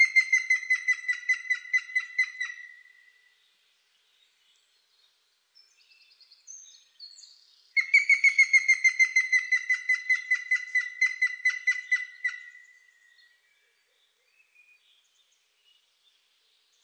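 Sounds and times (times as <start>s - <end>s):
Grey-headed woodpecker ringing call series: 0.0s - 2.9s, 7.8s - 12.6s.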